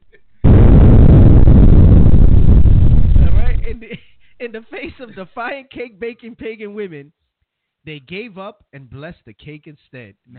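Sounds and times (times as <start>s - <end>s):
bombs exploding: 0.0s - 5.2s
speech: 4.5s - 7.2s, 7.8s - 10.3s.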